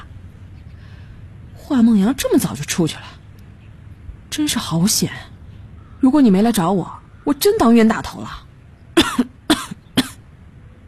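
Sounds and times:
speech: 0:01.7 - 0:03.2, 0:04.4 - 0:05.4, 0:06.0 - 0:08.4
raspy coughs from someone with a lingering cold who breathed in coal gas: 0:09.0 - 0:10.2.

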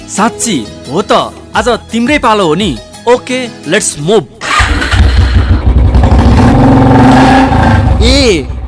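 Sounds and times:
speech: 0:00.1 - 0:04.4, 0:08.0 - 0:08.6
Royal Enfield Bullet motorcycle engine revving: 0:04.4 - 0:08.6.

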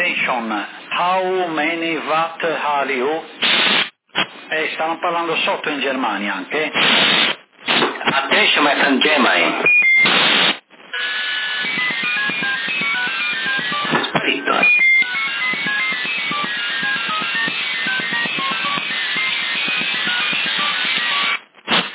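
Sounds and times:
speech: 0:00.3 - 0:03.8, 0:04.5 - 0:07.3, 0:08.1 - 0:10.5
hiss on the CB radio band in upper-sideband mode: 0:03.3 - 0:04.8, 0:05.6 - 0:21.9
rapid multiple beeping from a radiosonde balloon on the CB band: 0:09.7 - 0:21.9.

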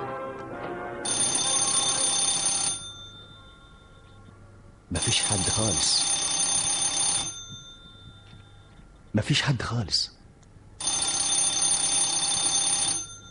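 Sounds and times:
electronic doorbell ringing at an apartment door: 0:01.1 - 0:04.3, 0:04.9 - 0:08.8, 0:10.8 - 0:13.2
speech: 0:09.3 - 0:10.1.

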